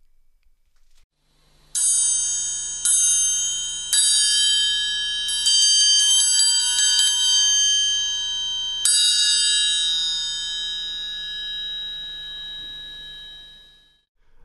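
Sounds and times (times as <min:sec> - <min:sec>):
triangle being struck: 0:01.8 - 0:14.1.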